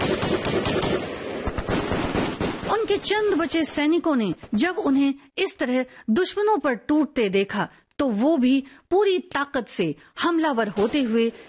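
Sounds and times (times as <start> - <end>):
light machine gun firing on enemy positions: 0.0 - 3.4
speech: 2.9 - 11.4.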